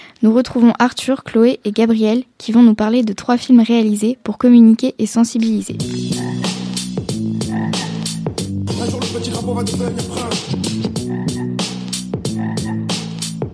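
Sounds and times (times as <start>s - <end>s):
speech: 0.2s - 6.4s, 9.2s - 10.8s
toads croaking in chorus with throaty pulsing calls: 5.9s - 8.2s, 11.0s - 11.6s, 12.3s - 12.9s.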